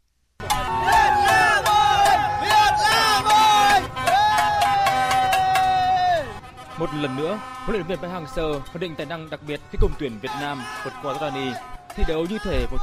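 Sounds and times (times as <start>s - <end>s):
football fans cheering and shouting in the street: 0.4s - 6.5s, 9.8s - 12.8s
blaring horn-like tones: 0.4s - 12.8s
sharp rhythmic bangs: 0.4s - 12.8s
speech: 7.0s - 12.8s.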